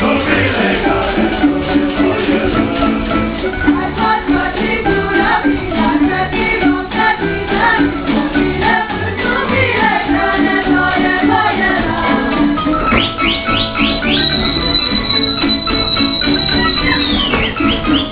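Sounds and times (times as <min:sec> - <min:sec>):
women dance group folk dancing: 0:00.0 - 0:18.1.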